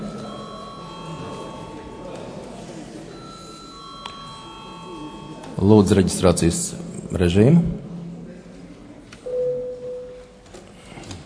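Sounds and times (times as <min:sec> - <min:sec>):
parliamentary chamber bell ringing: 0:00.0 - 0:02.4, 0:03.1 - 0:06.1
low murmur of voices chattering: 0:00.0 - 0:11.2
speech: 0:05.6 - 0:07.8.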